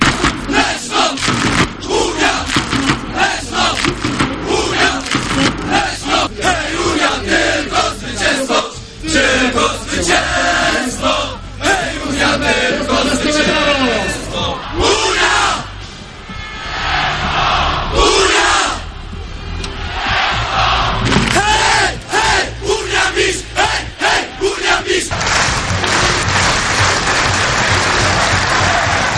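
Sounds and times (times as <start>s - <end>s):
large crowd of speedway fans cheering and chanting at a stadium in Poland: 0.0s - 29.1s
speedway fans rhythmic shouting: 0.0s - 29.1s
speedway fans applauding: 25.1s - 29.1s.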